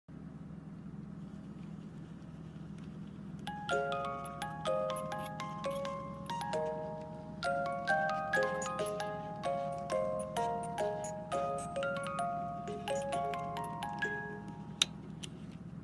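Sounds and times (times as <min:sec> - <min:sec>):
music box melody: 0:03.4 - 0:15.3.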